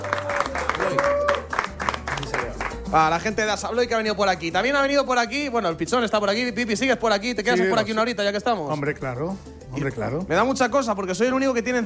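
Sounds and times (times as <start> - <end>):
studio audience clapping: 0.0 - 3.1
speech: 2.9 - 11.8.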